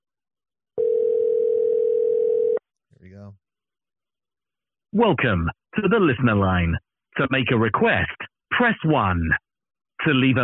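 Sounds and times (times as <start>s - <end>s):
telephone ringing tone on a radio station listener line: 0.8s - 2.6s
speech: 3.2s - 3.4s, 5.0s - 9.4s, 10.0s - 10.4s.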